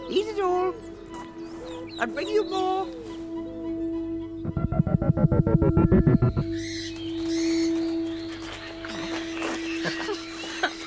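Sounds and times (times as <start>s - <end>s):
speech: 0.1s - 0.9s, 1.9s - 3.1s, 4.5s - 7.0s
birds chirping and squawking: 0.1s - 10.8s
rapid rattling pulses: 4.4s - 6.6s.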